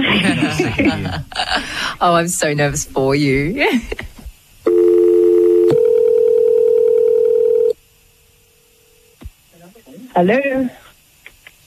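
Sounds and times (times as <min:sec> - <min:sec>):
laughter: 0:00.0 - 0:01.7
faint hum: 0:00.0 - 0:11.6
speech: 0:00.7 - 0:04.0, 0:10.2 - 0:10.8
landline phone line clicks: 0:04.7 - 0:07.7.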